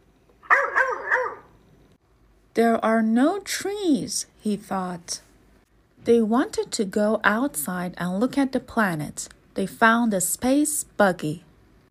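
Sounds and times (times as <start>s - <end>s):
dog barking: 0.4s - 1.6s
speech: 2.6s - 5.3s, 6.0s - 11.5s.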